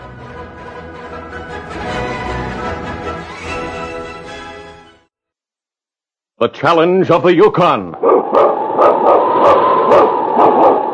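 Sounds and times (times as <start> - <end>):
speech: 6.4 - 9.0
husky sled dog barking: 8.0 - 10.9.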